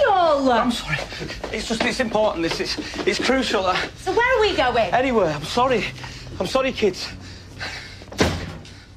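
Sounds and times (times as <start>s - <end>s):
speech: 0.4s - 7.8s
door slamming shut: 8.1s - 8.8s.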